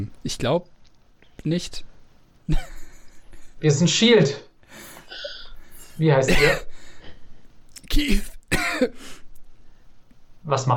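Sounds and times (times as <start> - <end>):
speech: 0.0 - 0.8, 1.4 - 1.9, 2.5 - 2.8, 3.6 - 5.3, 6.0 - 6.7, 7.9 - 9.2, 10.4 - 10.7
laughter: 2.5 - 3.7
harsh throaty cough with throat clearing: 5.1 - 5.6, 6.3 - 6.8, 7.8 - 9.2.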